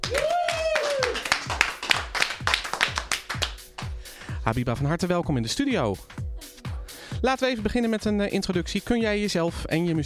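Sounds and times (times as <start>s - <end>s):
person whooping in a studio audience: 0.0s - 1.5s
small studio audience clapping rhythmically: 0.0s - 4.0s
speech: 4.5s - 6.2s, 7.2s - 10.0s.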